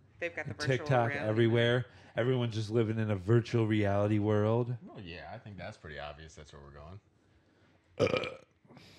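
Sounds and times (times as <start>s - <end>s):
speech: 0.2s - 7.1s, 8.0s - 8.9s
person burping into the microphone: 8.0s - 8.6s.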